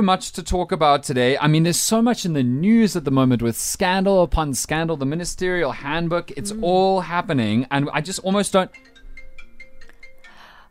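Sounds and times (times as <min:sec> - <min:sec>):
speech: 0:00.0 - 0:09.0
mobile phone ringtone during a morning radio broadcast: 0:08.7 - 0:10.6.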